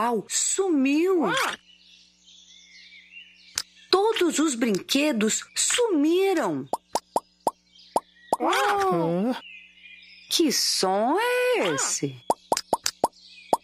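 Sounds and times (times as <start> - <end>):
speech: 0.0 - 1.6, 4.2 - 6.8, 8.4 - 9.5, 10.3 - 12.4
bubbles from a toy bubble blower popping: 12.3 - 13.1.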